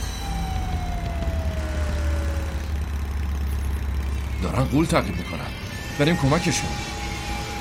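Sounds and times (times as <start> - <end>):
motorcycle taxi engine idling: 0.0 - 5.2
thin falling whine: 0.0 - 7.5
speech: 4.4 - 7.0.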